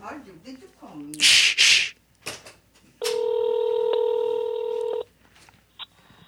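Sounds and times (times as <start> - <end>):
quiet room noise: 0.0 - 6.2
faint clicks: 2.3 - 3.2
loud steady electronic telephone keypad tone: 3.0 - 5.0.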